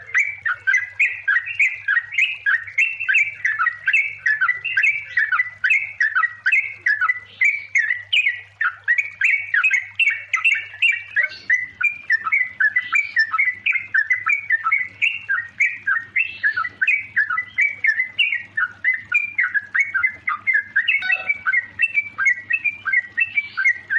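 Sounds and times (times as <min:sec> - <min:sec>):
faint low hum: 0:00.0 - 0:23.9
yellow-vented bulbul song: 0:00.0 - 0:23.9.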